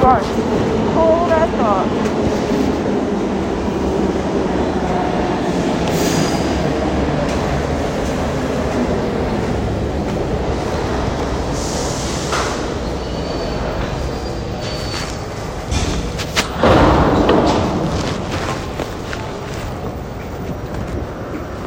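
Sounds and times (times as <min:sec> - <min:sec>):
speech: 0:00.0 - 0:02.6
train wheels rumbling on rails: 0:00.0 - 0:21.6
bright squeals and hisses of a train: 0:11.6 - 0:15.4.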